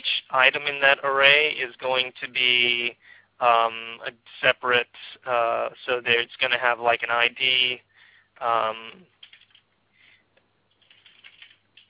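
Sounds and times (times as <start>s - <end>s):
speech: 0.3s - 9.1s
typing on a computer keyboard: 9.2s - 9.7s, 10.7s - 11.8s.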